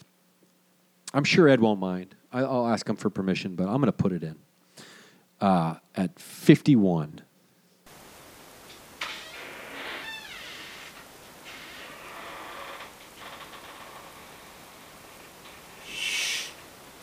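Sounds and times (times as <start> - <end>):
speech: 1.1 - 4.5, 5.4 - 7.3
door creaking open: 8.7 - 14.8.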